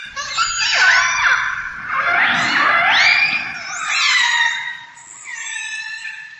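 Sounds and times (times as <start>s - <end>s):
orca sound: 0.1s - 5.0s.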